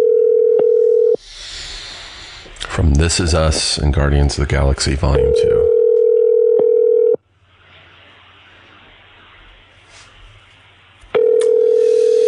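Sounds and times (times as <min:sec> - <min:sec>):
phone call ringback tone: 0:00.0 - 0:01.2, 0:05.2 - 0:07.2, 0:11.2 - 0:12.2
quiet hiss of phone line noise: 0:01.2 - 0:05.6, 0:07.2 - 0:12.2
speech: 0:02.9 - 0:05.6.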